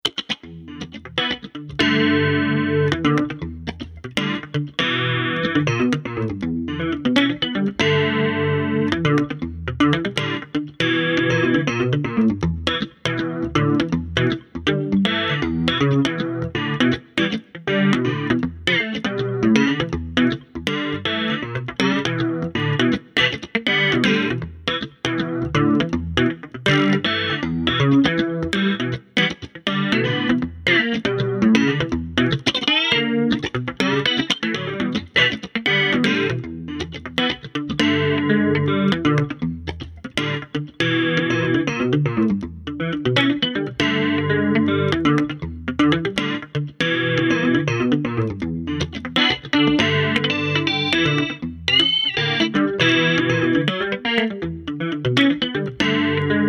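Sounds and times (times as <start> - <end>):
funky jazz guitar chorus solo: 0.0 - 56.4.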